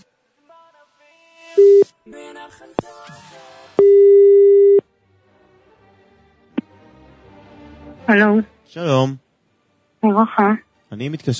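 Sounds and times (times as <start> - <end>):
single-pitched electronic telephone ringing tone on the line: 1.6 - 1.8, 3.8 - 4.8
speech: 8.1 - 9.2, 10.0 - 11.3.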